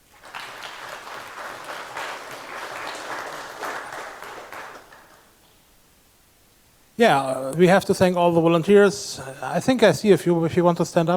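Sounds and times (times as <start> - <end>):
conference audience applauding a volunteer coffee maker: 0.0 - 5.4
speech: 7.0 - 11.1.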